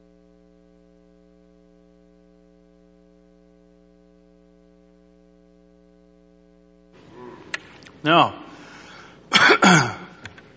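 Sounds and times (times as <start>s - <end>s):
person clearing throat with a cough: 7.1s - 7.6s, 9.3s - 10.2s
speech: 8.0s - 8.4s, 9.7s - 10.0s
faint small catch of breath: 8.5s - 10.4s.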